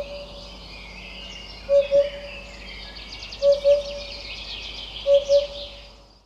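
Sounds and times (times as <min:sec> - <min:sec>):
Eurasian hoopoe giving soft low paired hoop notes: 0:01.7 - 0:02.3, 0:03.4 - 0:04.2, 0:05.0 - 0:05.8.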